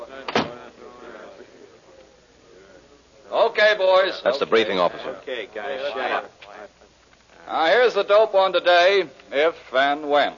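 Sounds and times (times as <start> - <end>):
low murmur of indistinct voices in the room: 0.0 - 10.3
door shutting with a solid thud: 0.3 - 0.6
speech: 3.3 - 6.4, 7.5 - 10.3.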